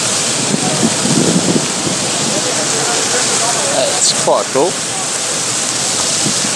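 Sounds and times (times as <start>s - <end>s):
outdoor water display fountain splashing: 0.0s - 6.5s
speech: 4.2s - 4.9s.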